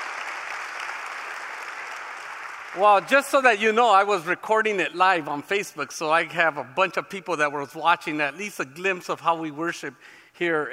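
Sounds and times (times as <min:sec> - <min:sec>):
church congregation applauding worship team: 0:00.0 - 0:04.0
speech: 0:02.8 - 0:10.7.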